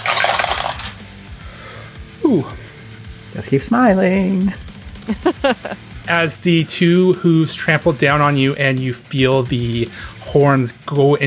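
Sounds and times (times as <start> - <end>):
dice being gathered and rolled: 0.0 - 1.0
speech: 2.2 - 2.6, 3.3 - 11.2
laughter: 5.0 - 5.9.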